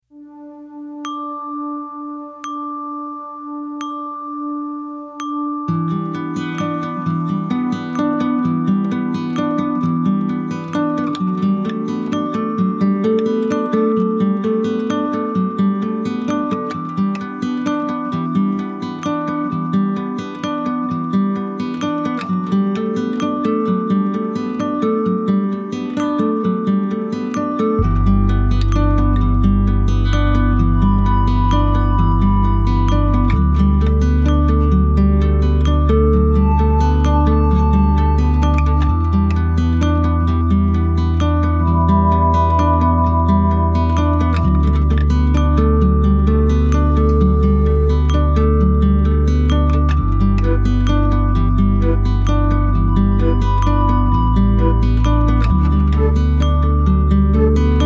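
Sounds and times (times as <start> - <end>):
background music: 0.0 - 57.8.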